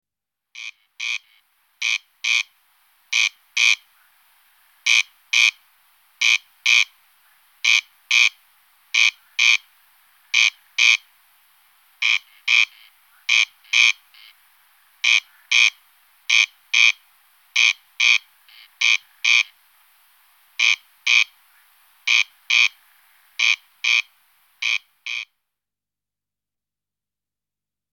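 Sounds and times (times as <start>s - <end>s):
Crex crex calling: 0.6s - 5.6s, 6.2s - 11.1s, 12.0s - 19.6s, 20.6s - 25.3s.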